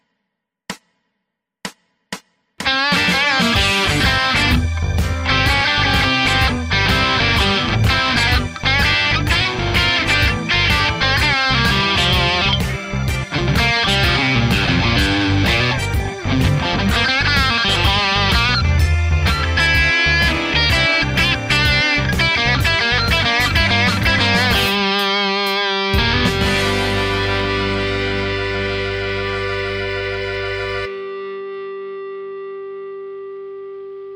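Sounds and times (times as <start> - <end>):
drums on a backing track: 1.7 - 28.8
distorted electric guitar with an ash body: 2.6 - 34.1.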